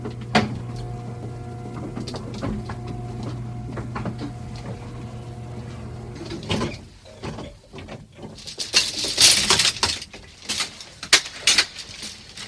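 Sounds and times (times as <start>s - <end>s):
descending elevator motor hum: 0.0s - 6.7s
elevator mechanical clunk: 0.0s - 7.6s
elevator rattles: 0.2s - 12.4s.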